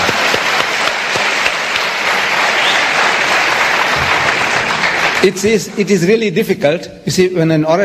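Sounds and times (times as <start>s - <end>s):
crowd applauding: 0.0s - 6.0s
speech: 5.2s - 7.8s.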